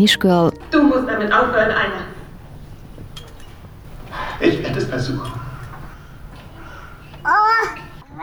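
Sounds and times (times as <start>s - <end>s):
speech: 0.0s - 2.1s, 4.4s - 5.4s
baby babbling during film screening: 0.6s - 8.1s
laughter: 0.6s - 8.1s
quiet murmur: 0.6s - 8.2s.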